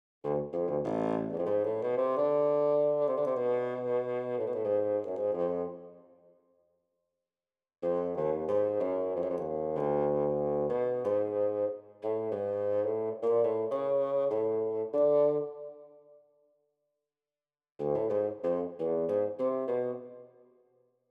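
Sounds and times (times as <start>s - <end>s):
bassoon melody: 0.2s - 6.0s, 7.8s - 15.8s, 17.8s - 20.4s.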